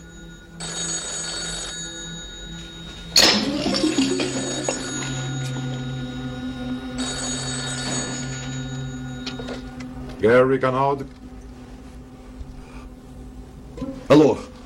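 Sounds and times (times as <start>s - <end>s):
electronic telephone ringing: 0.0s - 11.2s
speech: 10.2s - 11.2s, 14.1s - 14.4s.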